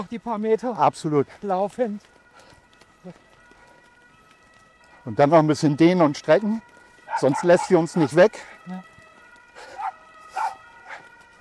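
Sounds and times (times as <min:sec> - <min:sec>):
speech: 0:00.0 - 0:02.2, 0:03.0 - 0:03.2, 0:05.0 - 0:08.9
dog barking at an ambulance: 0:07.1 - 0:07.8, 0:09.8 - 0:11.0.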